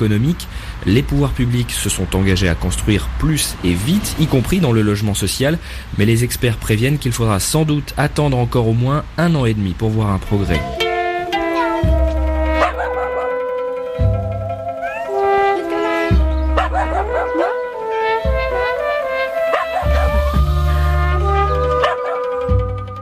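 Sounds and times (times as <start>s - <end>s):
speech: 0.0s - 10.8s
musical backing with deep sustained bass notes: 10.4s - 23.0s
stray dogs barking and whimpering in Florence Italy: 10.5s - 22.7s.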